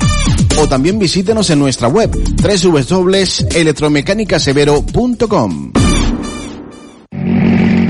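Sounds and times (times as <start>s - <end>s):
speech: 0.6s - 5.8s
rally car engine revving: 7.1s - 7.8s.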